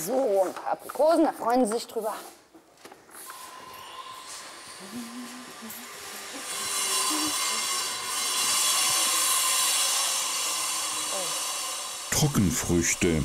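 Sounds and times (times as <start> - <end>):
speech: 0.0 - 2.4, 4.8 - 5.8, 12.2 - 13.2
construction drilling whine at an elephant enclosure: 3.3 - 13.2.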